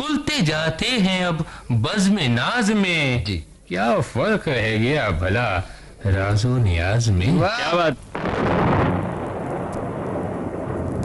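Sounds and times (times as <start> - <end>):
speech: 0.0 - 8.5
steady rain hiss: 0.0 - 11.0
deep thunder rumbling as a storm gathers: 8.1 - 11.0.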